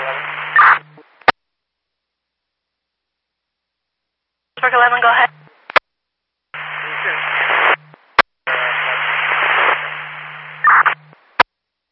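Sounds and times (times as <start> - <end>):
hissing radio static over a dispatch channel: 0.0 - 1.3, 6.6 - 11.4
low steady hum: 0.0 - 11.4
speech: 4.7 - 5.3.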